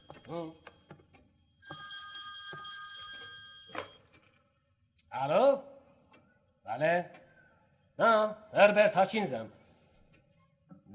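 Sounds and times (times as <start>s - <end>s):
telephone bell ringing: 0.0s - 4.2s
speech: 6.8s - 7.2s, 8.2s - 9.6s.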